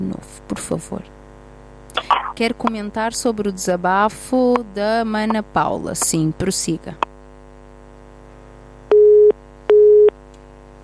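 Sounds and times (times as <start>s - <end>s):
faint hum: 0.0s - 10.8s
speech: 0.1s - 1.2s, 2.4s - 7.1s
telephone busy tone after a phone-in caller's line drops: 8.9s - 10.1s.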